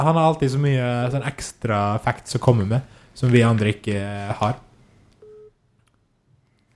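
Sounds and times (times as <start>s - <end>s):
speech: 0.0s - 4.7s
telephone outgoing call ringing tone: 5.2s - 5.6s.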